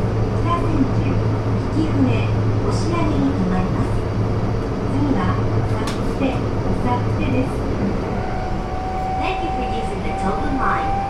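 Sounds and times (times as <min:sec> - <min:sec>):
subway express train rumble: 0:00.0 - 0:11.0.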